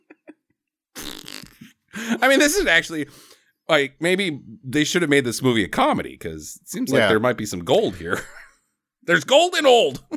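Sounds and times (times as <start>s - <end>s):
fart noises: 1.0s - 1.8s
speech: 2.1s - 8.4s, 9.0s - 10.1s.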